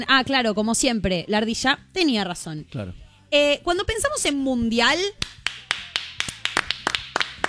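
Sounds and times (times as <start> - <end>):
speech: 0.0 - 5.4
hand clapping: 5.2 - 7.4.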